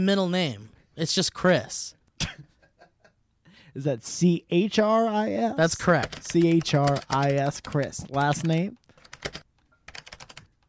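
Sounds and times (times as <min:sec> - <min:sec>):
speech: 0:00.0 - 0:02.4, 0:03.7 - 0:09.4
typing on a computer keyboard: 0:05.9 - 0:10.6.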